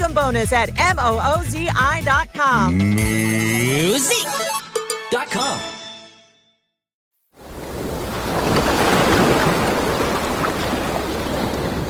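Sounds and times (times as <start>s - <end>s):
speech: 0.2s - 5.8s
ocean waves and surf: 7.4s - 11.8s.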